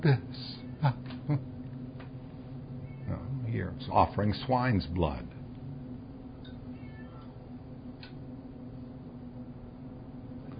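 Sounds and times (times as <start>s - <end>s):
speech: 0.0s - 1.4s, 3.9s - 5.4s
steady low hum: 0.0s - 10.5s
cat meowing: 2.8s - 3.4s, 6.7s - 7.4s.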